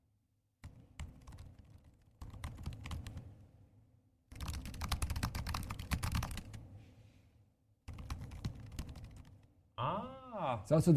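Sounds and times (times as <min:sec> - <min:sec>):
rapid typing on MacBook Air and MacBook Pro laptop keyboards: 0:00.6 - 0:03.3, 0:04.3 - 0:06.6, 0:07.9 - 0:09.5
speech: 0:10.4 - 0:10.9.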